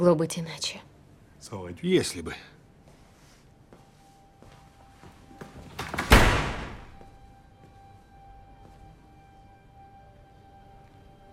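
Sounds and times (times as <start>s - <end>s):
speech: 0.0s - 2.6s
apartment door slamming shut: 5.8s - 7.0s.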